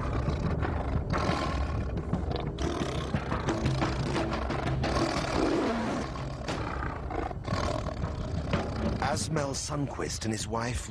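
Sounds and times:
tiger roaring: 0.0s - 9.3s
speech: 9.2s - 10.8s.

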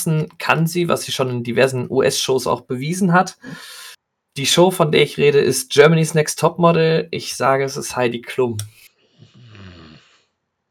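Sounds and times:
speech: 0.0s - 3.8s, 4.4s - 8.9s
breathy burst: 3.4s - 4.0s
person growling in displeasure: 9.2s - 10.2s.

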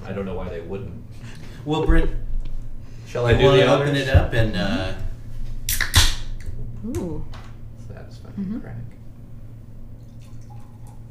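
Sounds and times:
speech: 0.2s - 2.2s, 3.1s - 5.0s
amber beer pouring into a glass: 10.0s - 11.0s.

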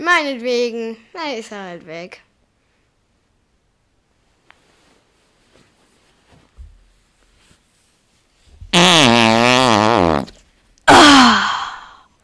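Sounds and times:
speech: 0.0s - 2.3s
farts: 8.6s - 10.5s.

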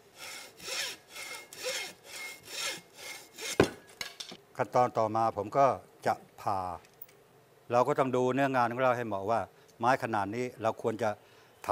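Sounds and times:
hacksaw cutting through sisuk bamboo near a node for kite making: 0.0s - 3.9s
speech: 4.6s - 6.9s, 7.7s - 11.7s.

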